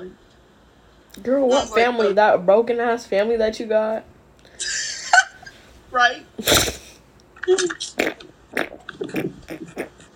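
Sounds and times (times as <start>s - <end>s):
speech: 1.2s - 4.8s, 5.9s - 6.7s, 7.5s - 10.0s
fart noise blown with the lips: 6.4s - 7.0s, 7.6s - 10.1s.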